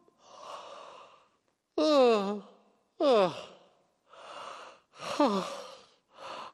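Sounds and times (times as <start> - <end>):
person yawning: 1.8 - 3.6, 5.1 - 5.7.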